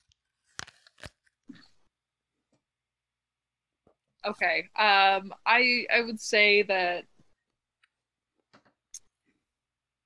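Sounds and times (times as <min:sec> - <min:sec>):
crunchy food being bitten and chewed: 0:00.6 - 0:01.8
speech: 0:04.2 - 0:07.1.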